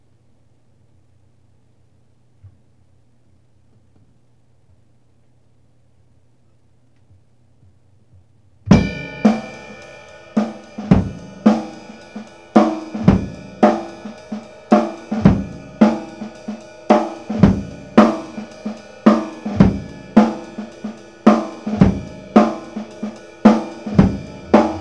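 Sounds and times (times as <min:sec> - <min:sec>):
simple soft funk ride cymbal pattern, acoustic: 0:08.7 - 0:24.7.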